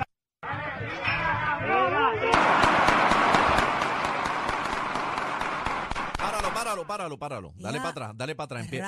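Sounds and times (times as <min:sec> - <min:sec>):
loud agitated crowd noise: 0:00.4 - 0:04.5
gunshot cracks from real bullets: 0:02.3 - 0:06.6
speech: 0:06.6 - 0:08.8.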